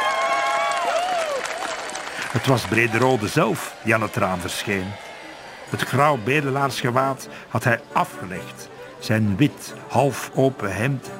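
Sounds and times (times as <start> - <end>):
deafening crowd cheering, shouting and whooping: 0.0 - 8.6
speech: 2.3 - 5.1, 5.7 - 11.1.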